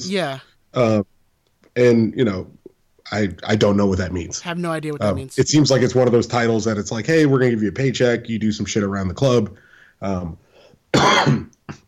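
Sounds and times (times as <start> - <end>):
speech: 0.0 - 1.1, 1.8 - 11.5
person coughing into a microphone: 10.9 - 11.8.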